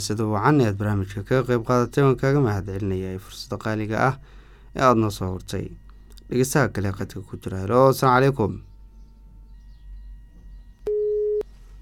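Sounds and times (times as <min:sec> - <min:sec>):
speech: 0:00.0 - 0:08.7
faint low hum: 0:00.0 - 0:11.8
telephone busy tone after a caller's line drops during a phone-in: 0:10.9 - 0:11.5.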